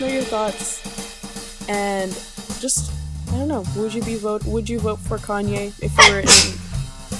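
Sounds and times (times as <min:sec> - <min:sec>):
speech: 0:00.0 - 0:00.9, 0:01.7 - 0:06.6
sneeze: 0:06.0 - 0:06.6.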